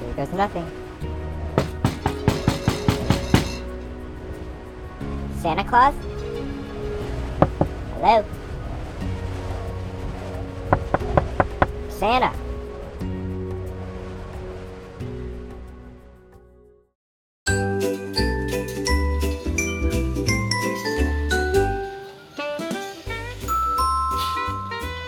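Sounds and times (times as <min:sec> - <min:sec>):
sustained musical backing: 0:00.0 - 0:16.6, 0:17.5 - 0:25.0
speech: 0:00.2 - 0:01.1, 0:05.4 - 0:06.1, 0:08.0 - 0:08.4, 0:12.0 - 0:12.4
doorbell chime melody: 0:18.9 - 0:22.3, 0:23.5 - 0:25.0.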